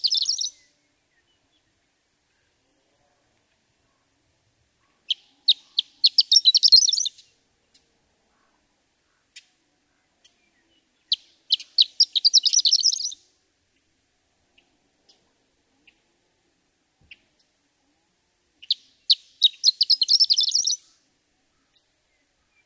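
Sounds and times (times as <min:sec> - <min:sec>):
horned lark singing: 0:00.0 - 0:01.9, 0:05.1 - 0:07.3, 0:10.4 - 0:13.2, 0:18.6 - 0:21.0.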